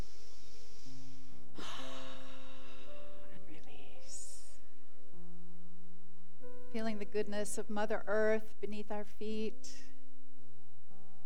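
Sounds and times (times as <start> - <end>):
slow deep breath inhale and exhale: 0.0 - 3.4
faint steady low drone: 0.0 - 11.2
speech: 6.8 - 9.9.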